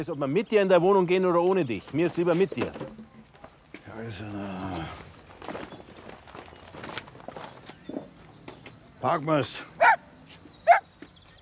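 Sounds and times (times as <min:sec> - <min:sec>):
speech: 0:00.0 - 0:03.0, 0:04.0 - 0:05.0, 0:09.0 - 0:09.8
single short sharp dog bark: 0:09.8 - 0:10.0, 0:10.6 - 0:10.8.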